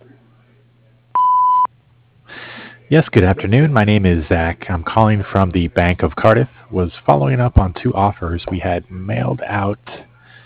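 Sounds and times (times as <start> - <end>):
faint low hum: 0.0 - 10.4
answering machine beep before recording a message: 1.2 - 1.7
speech: 2.9 - 10.1.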